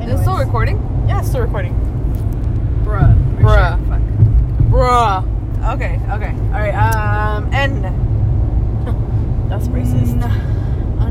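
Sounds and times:
steady low car engine rumble: 0:00.0 - 0:11.0
speech: 0:00.6 - 0:02.2, 0:04.9 - 0:08.1, 0:09.5 - 0:10.6
voice making swooping pitch-bending sounds imitating a car whooshing by: 0:09.6 - 0:10.4.

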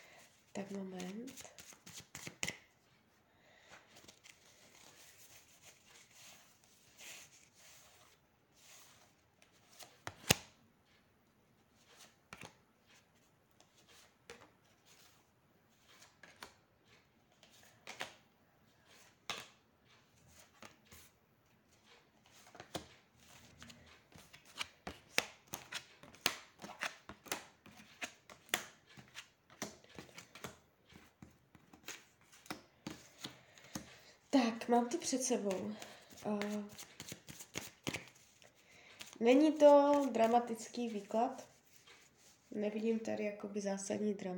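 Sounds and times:
speech: 0:00.6 - 0:01.6, 0:34.7 - 0:36.9, 0:39.2 - 0:41.5, 0:42.6 - 0:44.3
tarot cards being shuffled: 0:00.6 - 0:02.7, 0:03.9 - 0:10.6, 0:11.8 - 0:13.0, 0:13.6 - 0:18.2, 0:18.9 - 0:19.6, 0:21.8 - 0:34.0, 0:35.0 - 0:42.5.

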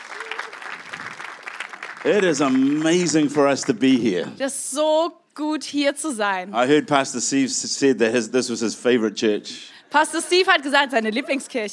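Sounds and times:
church audience clapping: 0:00.0 - 0:04.0
speech: 0:02.0 - 0:11.7.

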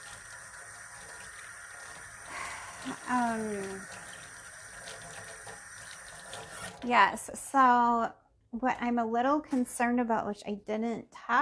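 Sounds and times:
water running from a tap: 0:00.0 - 0:07.3
speech: 0:02.8 - 0:04.0, 0:06.8 - 0:11.4.

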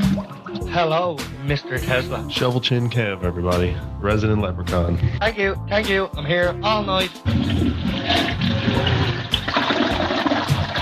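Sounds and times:
speech: 0:00.7 - 0:09.2
toilet flushing: 0:07.2 - 0:10.8.

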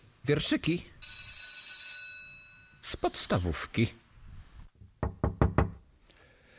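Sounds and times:
speech: 0:00.3 - 0:00.9, 0:03.0 - 0:04.0
sharp knocking on a door: 0:05.0 - 0:05.8.

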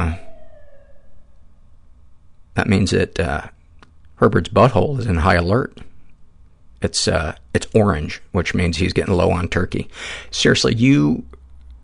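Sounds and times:
emergency vehicle siren wailing: 0:00.0 - 0:01.9
speech: 0:02.6 - 0:03.6, 0:04.2 - 0:05.9, 0:06.8 - 0:11.4.

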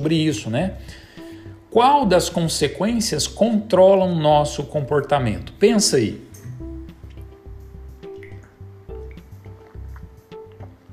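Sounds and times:
speech: 0:00.0 - 0:01.0, 0:01.7 - 0:06.3
person drinking water in gulps: 0:08.0 - 0:10.9
liquid sloshing: 0:08.1 - 0:10.8.

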